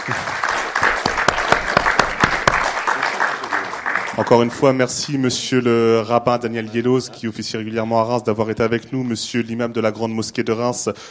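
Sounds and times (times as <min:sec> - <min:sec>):
audience applauding speakers after a discussion: 0:00.0 - 0:04.8
speech: 0:04.2 - 0:11.0.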